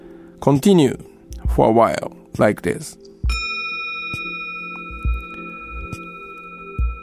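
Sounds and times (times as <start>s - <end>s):
speech: 0.4s - 3.1s
bell struck softly with a wooden stick, ringing: 3.3s - 7.0s.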